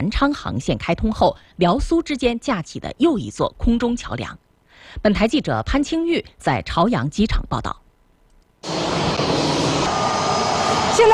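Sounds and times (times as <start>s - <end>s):
speech: 0.1s - 7.8s, 11.0s - 11.1s
passenger airliner jet engine roar while taxiing to its parking stand: 8.6s - 11.1s.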